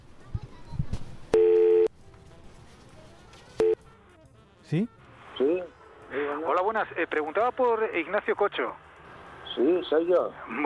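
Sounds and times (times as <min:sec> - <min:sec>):
telephone keypad dialing tones: 0:01.3 - 0:01.9
faint rustling: 0:02.0 - 0:03.6
speech: 0:04.7 - 0:05.7, 0:06.4 - 0:08.8, 0:09.6 - 0:10.6.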